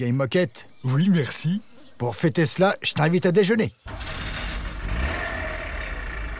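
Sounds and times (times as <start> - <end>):
speech: 0.0 - 4.4
car engine revving and pulling away: 3.9 - 6.3.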